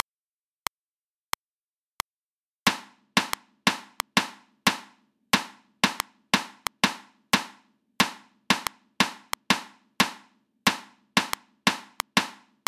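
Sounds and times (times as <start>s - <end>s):
sixteenth note rhythms at 90 bpm: 2.7s - 4.8s, 5.4s - 12.6s.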